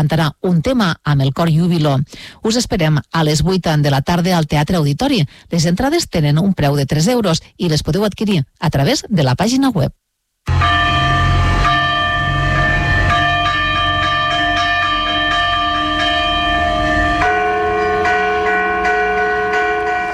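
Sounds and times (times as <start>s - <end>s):
speech: 0.0s - 10.7s
church bells of ten bell towers pealing together in the evening: 10.5s - 20.1s.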